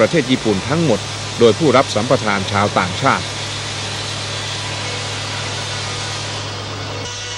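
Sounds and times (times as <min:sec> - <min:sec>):
speech: 0:00.0 - 0:03.3
large sawmill saw cutting logs from the Salween River: 0:00.0 - 0:07.3.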